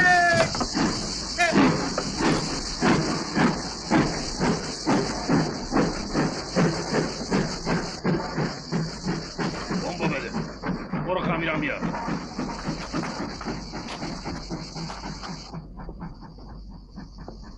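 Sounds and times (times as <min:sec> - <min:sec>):
train chugging: 0:00.0 - 0:17.5.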